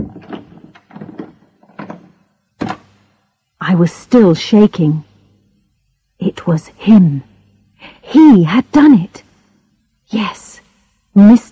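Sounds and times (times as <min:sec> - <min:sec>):
door rattling: 0:00.0 - 0:03.0
speech: 0:03.7 - 0:05.1, 0:06.4 - 0:07.3, 0:08.1 - 0:09.2, 0:10.1 - 0:10.6, 0:11.2 - 0:11.5.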